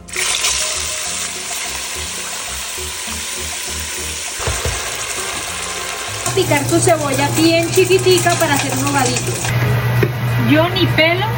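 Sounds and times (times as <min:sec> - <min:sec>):
chopped pork cracklings seasoned with salt and dark sauce frying in very hot oil: 0:00.0 - 0:09.5
low knocks: 0:04.4 - 0:06.2
speech: 0:06.4 - 0:11.3.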